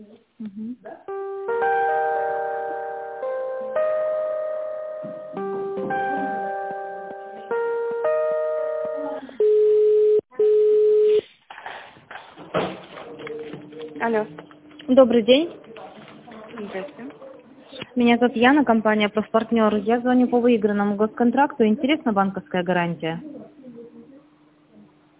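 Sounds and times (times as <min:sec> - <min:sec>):
speech: 0:00.0 - 0:01.3, 0:14.1 - 0:15.6, 0:18.0 - 0:23.3
tinny electronic melody of held chord-like notes on a telephone line: 0:00.9 - 0:10.3
loud steady telephone line beeps while a call is transferred: 0:07.6 - 0:11.2.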